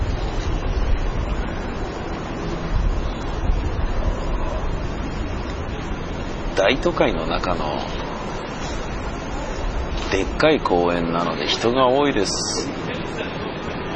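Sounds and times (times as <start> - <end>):
steady gusty wind in an outdoor city park: 0.0 - 13.9
speech: 6.6 - 8.0, 10.1 - 13.4.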